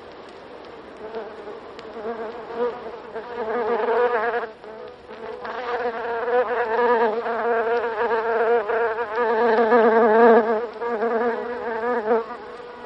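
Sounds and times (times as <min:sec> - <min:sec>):
Buff-tailed bumblebee Bombus terrestris buzzing: 0:02.0 - 0:12.8.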